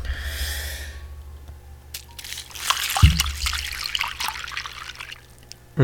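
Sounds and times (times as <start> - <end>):
milk pouring into a cereal bowl: 1.9 - 5.7.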